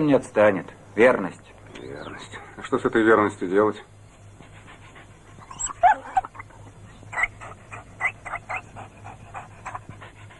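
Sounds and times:
speech: 0:00.0 - 0:03.9
dog panting: 0:04.1 - 0:10.3
dog whining: 0:05.4 - 0:09.8.

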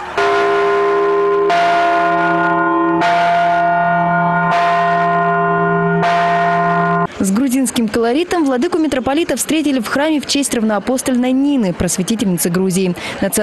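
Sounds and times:
newly blessed church bell ringing: 0:00.1 - 0:07.2
speech: 0:07.3 - 0:13.4.

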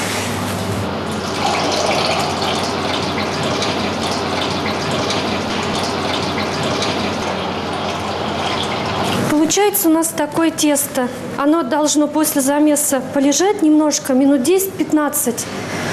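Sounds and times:
purified water pouring onto yeast in a dough-mixing tub: 0:01.1 - 0:09.6
speech: 0:09.6 - 0:15.9.

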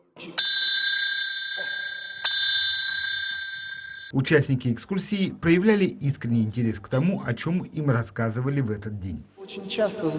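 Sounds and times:
speech: 0:00.2 - 0:00.4, 0:04.1 - 0:10.1
small hand bells ringing before church service: 0:00.4 - 0:04.2.

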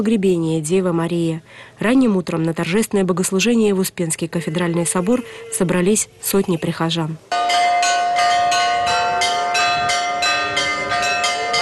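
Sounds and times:
speech: 0:00.0 - 0:07.7
church bells ringing: 0:04.8 - 0:11.6.

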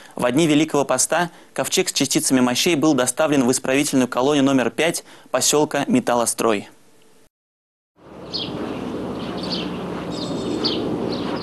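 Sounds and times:
speech: 0:00.2 - 0:06.8
steady broad ambient noise: 0:08.0 - 0:11.4
birds chirping outdoors at a correctional colony in Metallostroy: 0:08.1 - 0:11.4.

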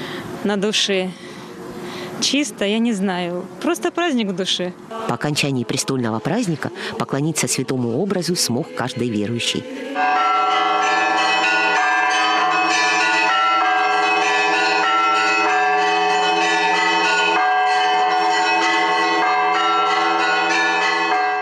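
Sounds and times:
speech: 0:00.4 - 0:01.2, 0:02.2 - 0:10.4
church bells ringing in a continuous peal: 0:05.2 - 0:21.4.

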